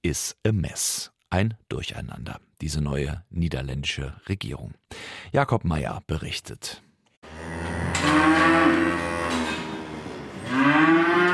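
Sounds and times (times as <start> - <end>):
speech: 0.0 - 7.4, 8.0 - 8.8
young dairy cows mooing in a barn on a farm in the Netherlands: 7.2 - 11.3.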